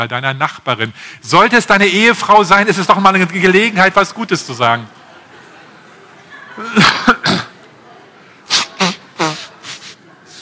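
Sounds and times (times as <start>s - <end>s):
speech: 0.0s - 5.0s
laughter: 4.8s - 10.4s
person blowing nose: 8.4s - 10.4s.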